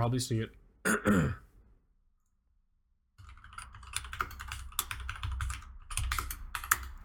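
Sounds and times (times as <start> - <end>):
speech: 0.0 - 1.4
computer keyboard typing with clicky keystrokes: 3.2 - 7.0.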